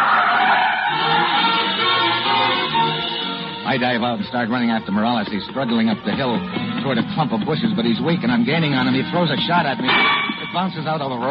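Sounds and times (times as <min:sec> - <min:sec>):
car tires skidding as the car brakes hard to a stop: 0:00.0 - 0:04.0
speech: 0:03.7 - 0:11.3.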